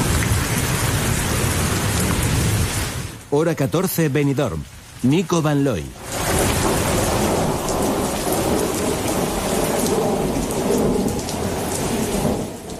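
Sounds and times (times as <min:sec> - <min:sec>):
deep thunder rumbling and rolling in a thunderstorm: 0:00.0 - 0:03.2, 0:06.0 - 0:12.7
heavy rain pouring in a thunderstorm: 0:00.0 - 0:12.7
speech: 0:03.3 - 0:06.6.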